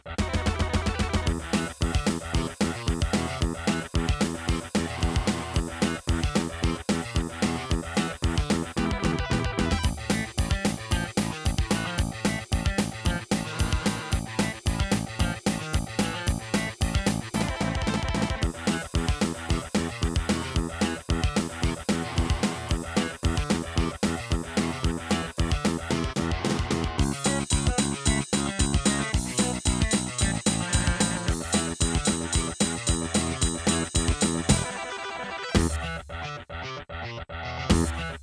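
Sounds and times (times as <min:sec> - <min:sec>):
soundcard test sound on an Acer laptop: 0:00.2 - 0:38.2.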